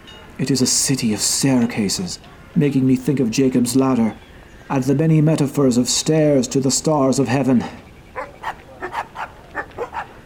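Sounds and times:
speech: 0.4 - 7.9
dogs barking in sharp yaps: 8.1 - 10.2.

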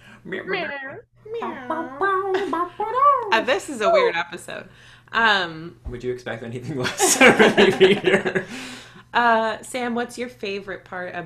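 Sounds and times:
speech: 0.2 - 2.0, 3.4 - 11.2
person imitating a cat's trill and meow: 0.5 - 4.1
laughter: 1.5 - 4.2, 6.8 - 8.6.

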